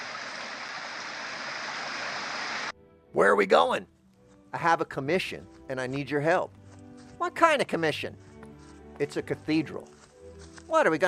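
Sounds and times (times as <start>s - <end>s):
water of a current flowing under a bridge: 0.0s - 2.7s
speech: 3.1s - 6.6s, 7.2s - 8.3s, 9.0s - 10.0s, 10.7s - 11.0s.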